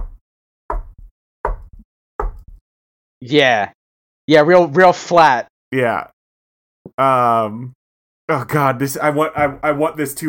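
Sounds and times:
heavy knocks on a door: 0.0 - 2.6
speech: 3.2 - 6.2, 6.9 - 10.2.

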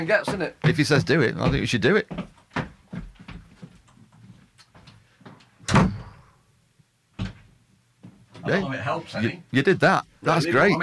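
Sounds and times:
speech: 0.0 - 2.3, 8.5 - 10.8
soft shuffling footsteps: 0.0 - 5.6
door shutting with a loud thud: 5.6 - 6.3.

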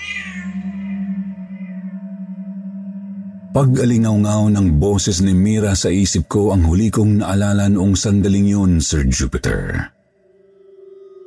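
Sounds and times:
cat meowing: 0.0 - 1.1
speech: 3.6 - 10.0.

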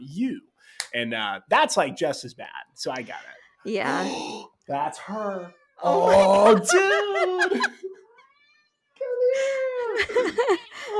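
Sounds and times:
speech: 0.1 - 8.0, 9.0 - 10.9
laughter: 5.9 - 8.2, 9.4 - 10.9
shy 4-year-old 8-pound female cat meowing: 8.2 - 9.1.

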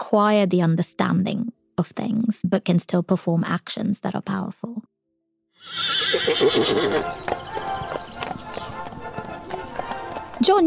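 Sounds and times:
speech: 0.1 - 4.9, 5.6 - 8.0, 10.4 - 10.6
horse whinnying: 5.6 - 8.1
horse hooves clip-clopping at a walking pace: 6.2 - 10.6.

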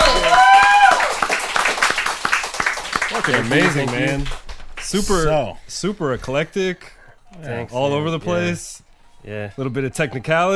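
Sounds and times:
person whooping: 0.0 - 1.1
audience clapping: 0.0 - 5.3
speech: 3.2 - 10.5.

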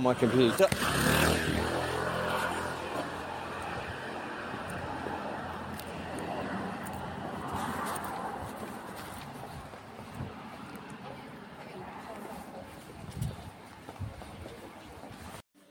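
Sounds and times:
speech: 0.0 - 1.8
moped carrying two men buzzing: 0.0 - 6.1
street and traffic noise: 0.0 - 15.6.

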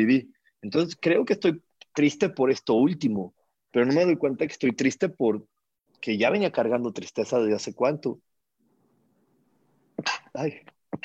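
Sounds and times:
speech: 0.0 - 8.3, 10.0 - 11.0
person sneezing: 10.0 - 10.4.

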